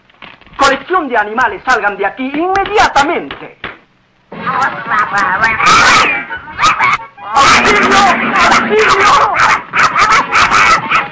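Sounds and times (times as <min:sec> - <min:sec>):
speech: 0:00.9 - 0:03.6, 0:04.5 - 0:06.4, 0:07.3 - 0:09.6
watchdog barking and yipping excitedly: 0:05.6 - 0:11.0.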